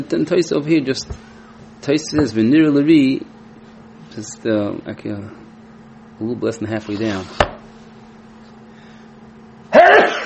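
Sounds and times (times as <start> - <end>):
speech: 0.0 - 3.4, 4.2 - 5.4, 6.2 - 7.5
sneeze: 9.7 - 10.2.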